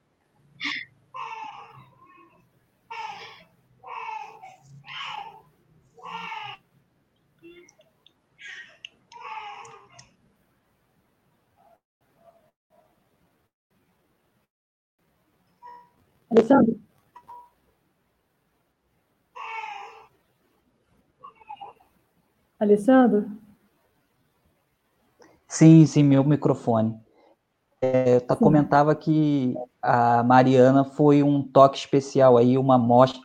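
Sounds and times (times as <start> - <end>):
hungry baby crying: 0.6 - 6.6, 8.4 - 10.1, 19.4 - 20.1, 21.2 - 21.9
speech: 16.4 - 16.8, 22.6 - 23.4, 25.6 - 27.0, 28.2 - 33.2.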